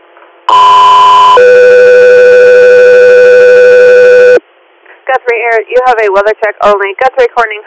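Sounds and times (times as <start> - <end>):
dispatch alert tones: 0.5 - 4.4
speech: 5.3 - 7.6.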